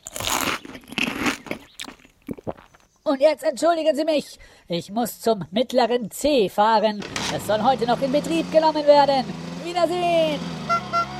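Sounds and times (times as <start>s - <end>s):
biting and chewing corn on the cob: 0.0s - 2.9s
speech: 3.1s - 10.5s.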